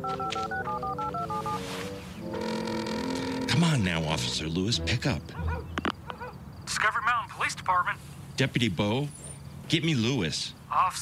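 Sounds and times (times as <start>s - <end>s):
speech: 0.0s - 1.4s, 3.6s - 5.6s, 7.7s - 10.9s
phone keypad tones dialing a number: 0.0s - 3.6s.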